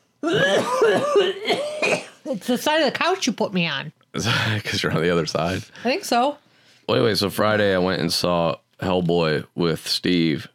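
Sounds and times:
person coughing: 0.2 - 2.3
speech: 0.2 - 10.5.

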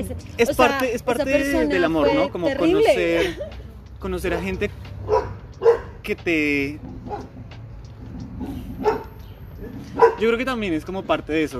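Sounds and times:
speech: 0.0 - 5.3, 6.1 - 7.3, 9.8 - 11.5
laughter: 3.0 - 3.8
dog barking: 5.0 - 6.0, 7.0 - 7.4, 8.4 - 10.4.

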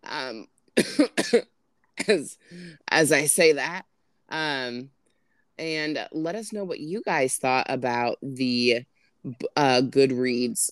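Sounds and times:
speech: 0.3 - 5.0, 5.6 - 10.7
person coughing: 0.8 - 1.4, 2.0 - 2.7.

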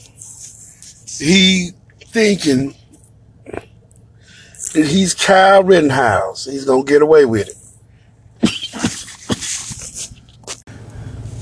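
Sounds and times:
low steady hum: 0.0 - 11.4
speech: 1.2 - 2.8, 4.7 - 7.6
person coughing harshly: 8.4 - 9.8.

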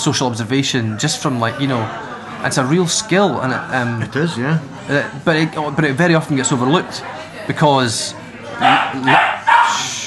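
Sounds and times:
speech: 0.0 - 9.3
dog barking: 8.6 - 10.0.

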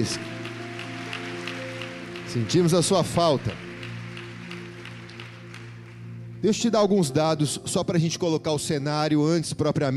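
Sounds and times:
speech: 0.0 - 0.3, 2.3 - 3.6, 6.4 - 9.9
congregation clapping: 0.0 - 7.1
sustained keyboard or organ chords: 0.0 - 9.3.

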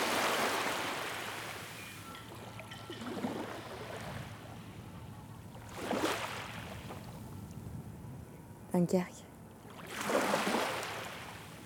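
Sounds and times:
waves breaking against a pier: 0.0 - 4.6, 5.6 - 7.2, 9.7 - 11.6
speech: 8.8 - 9.2.

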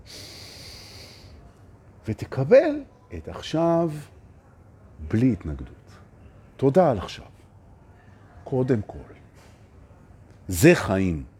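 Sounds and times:
deep breath in and out: 0.0 - 1.4
speech: 2.1 - 4.2, 5.0 - 5.8, 6.6 - 7.3, 8.5 - 9.2, 10.5 - 11.3.

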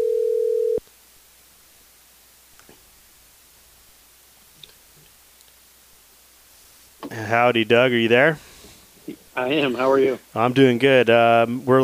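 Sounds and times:
electronic outgoing call ringback tone: 0.0 - 0.8
speech: 7.2 - 8.4, 9.4 - 11.8.

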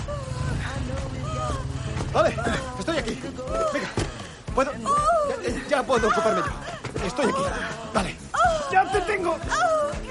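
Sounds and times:
motorcycle engine rumbling as it pulls up and stops on a lonely street: 0.0 - 4.6
speech: 4.6 - 4.9, 5.8 - 10.0.

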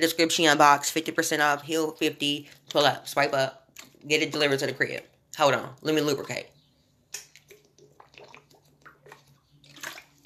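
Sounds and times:
speech: 0.0 - 7.2
sipping water from a bottle: 7.1 - 10.2
gulping: 7.6 - 10.2.

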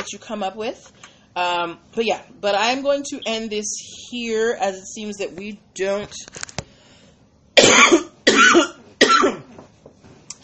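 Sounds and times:
speech: 0.0 - 6.5
harsh loud coughs: 7.6 - 9.6.

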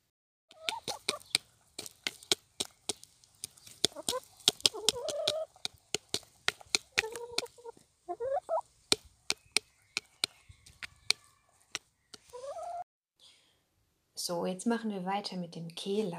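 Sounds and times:
chicken beaks pecking a plastic feeding bowl: 0.5 - 12.8
hens clucking and murmuring: 0.5 - 12.8
speech: 14.3 - 16.1.

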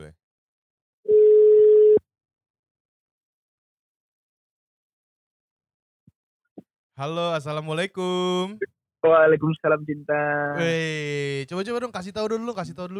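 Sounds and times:
telephone ringback tone while placing call: 1.1 - 2.0
speech: 7.0 - 12.9.

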